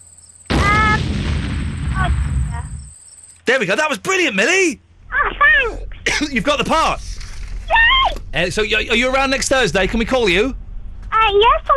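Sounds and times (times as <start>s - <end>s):
big bomb explosion: 0.5s - 2.9s
speech: 3.5s - 4.8s, 6.2s - 10.6s, 11.3s - 11.7s.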